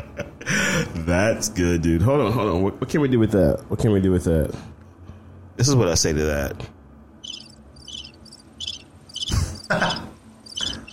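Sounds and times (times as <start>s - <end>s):
speech: 1.1s - 4.7s, 5.6s - 6.8s
crickets chirping in a jar: 7.2s - 10.9s.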